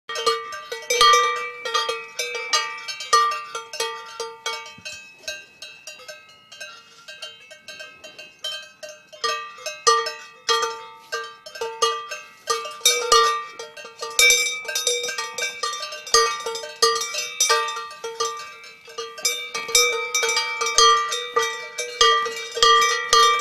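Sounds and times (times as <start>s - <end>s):
herd of cows: 0.1s - 23.3s.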